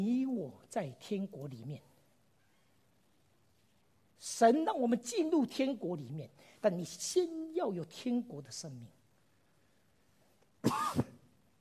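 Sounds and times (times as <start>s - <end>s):
speech: 0.0s - 1.9s, 4.2s - 9.0s, 10.6s - 11.1s
harsh cough: 10.6s - 11.4s.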